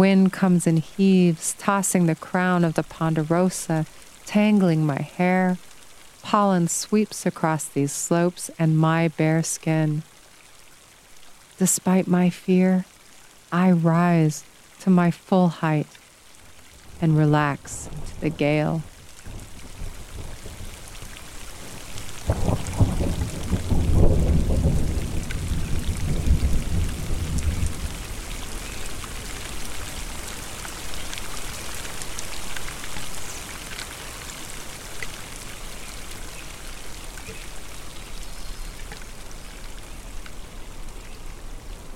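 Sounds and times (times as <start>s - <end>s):
speech: 0.0s - 10.1s, 11.6s - 12.9s, 13.5s - 16.0s, 17.0s - 18.9s
thunderstorm rain pattering among ponderosa pine trees on a slope: 0.0s - 41.9s
deep rumble of thunder: 19.2s - 28.3s.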